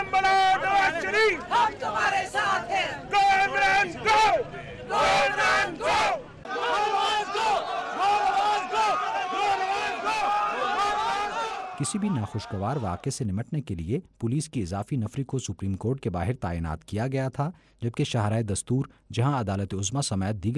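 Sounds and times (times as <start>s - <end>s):
crowd of party workers chanting slogans outside the Supreme Court: 0.0s - 11.8s
speech: 11.9s - 20.5s.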